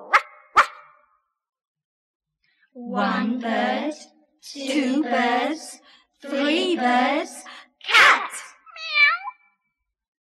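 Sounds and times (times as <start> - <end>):
dog barking in a children's counting song: 0.0 - 1.0
speech: 2.8 - 8.0.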